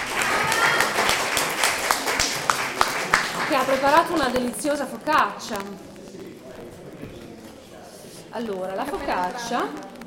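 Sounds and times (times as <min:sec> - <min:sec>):
audience applause at a cooking event: 0:00.0 - 0:05.4
speech: 0:03.6 - 0:05.9, 0:08.4 - 0:09.9.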